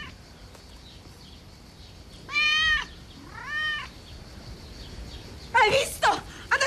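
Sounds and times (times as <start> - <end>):
faint noise: 0.0 - 6.6
cat meowing: 2.3 - 3.9.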